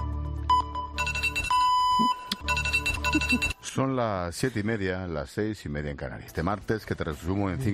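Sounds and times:
mobile phone alarm ringing in a studio: 0.5 - 3.6
speech: 3.3 - 7.7.

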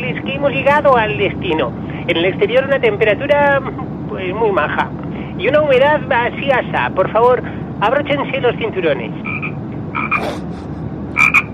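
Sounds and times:
low steady hum: 0.0 - 11.5
speech: 0.4 - 9.3
frog croaking: 9.2 - 10.2, 11.2 - 11.5.

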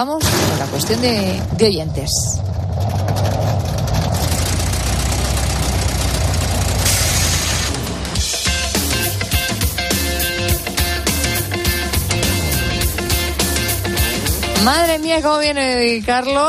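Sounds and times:
speech: 0.0 - 3.0, 14.6 - 16.4
motorcycle engine running: 1.2 - 9.7, 10.5 - 15.0.

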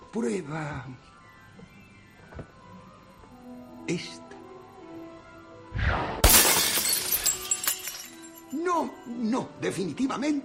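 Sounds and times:
speech: 0.1 - 1.1, 3.9 - 4.2, 8.5 - 10.4
drinking glass shattering: 6.2 - 8.6
glass fragments tinkling: 6.2 - 9.0.

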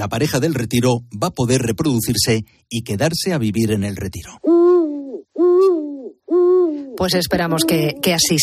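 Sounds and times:
speech: 0.0 - 4.8, 7.0 - 8.4
owl hooting: 4.4 - 8.4.

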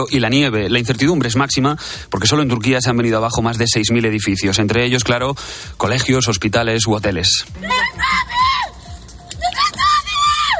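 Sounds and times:
speech: 0.0 - 8.2
woman shouting and wailing amid collapsed building rubble: 7.5 - 10.5.

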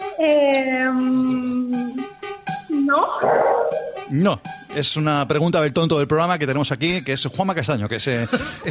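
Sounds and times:
speech: 0.2 - 1.2, 4.1 - 8.6
dog yelping: 3.2 - 4.0.

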